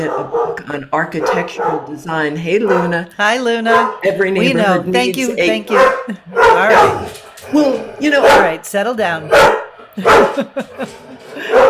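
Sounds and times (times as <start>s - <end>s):
dog barking: 0.0s - 0.6s, 1.2s - 1.9s, 2.6s - 3.0s, 3.7s - 4.2s, 5.7s - 7.2s, 8.1s - 8.6s, 9.3s - 10.6s, 11.4s - 11.6s
speech: 0.0s - 11.6s
laughter: 4.4s - 6.8s, 9.9s - 11.6s.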